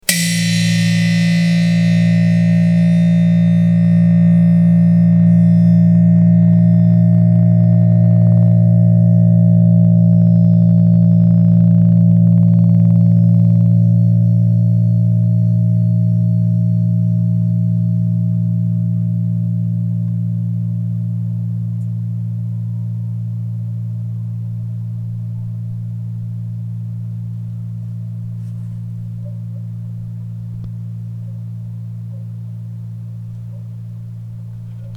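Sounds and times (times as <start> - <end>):
steel string: 0.0 - 22.6.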